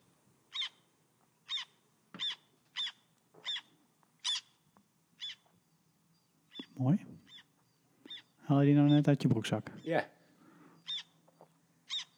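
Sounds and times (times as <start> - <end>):
recorded zwarte ster bird calls played from a phone app: 0.5 - 0.8, 1.5 - 4.6, 5.2 - 5.4, 6.5 - 12.1
speech: 6.8 - 7.2, 8.5 - 10.2.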